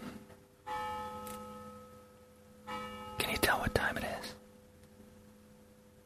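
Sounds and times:
deep bell ringing: 0.6s - 3.6s
speech: 3.4s - 4.0s.

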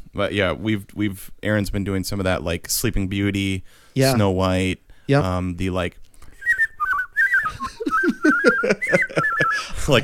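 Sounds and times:
speech: 0.2s - 6.1s, 8.4s - 10.0s
person whistling a short wavering melody: 6.3s - 9.8s
laughter: 7.6s - 10.0s.

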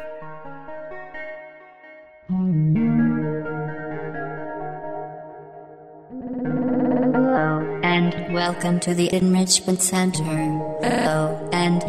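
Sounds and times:
heavily processed robotic voice: 2.3s - 4.2s, 6.1s - 11.8s
electronic synth remix track with sustained buzzy tones: 2.3s - 5.5s, 6.1s - 11.8s
speech: 8.4s - 11.8s.

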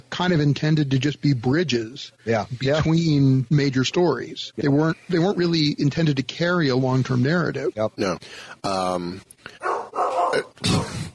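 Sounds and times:
speech: 0.2s - 9.7s, 10.4s - 11.1s
dogs barking excitedly at a visitor: 9.6s - 10.5s.

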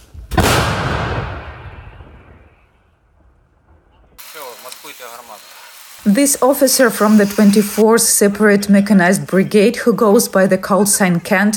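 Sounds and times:
howitzer artillery gun firing: 0.3s - 2.6s
speech: 4.9s - 11.5s.

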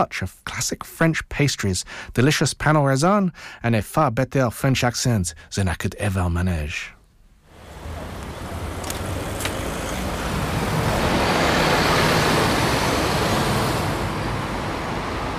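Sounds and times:
speech: 0.0s - 7.0s
morning traffic of cars, buses and trucks on a busy road: 7.5s - 15.3s.

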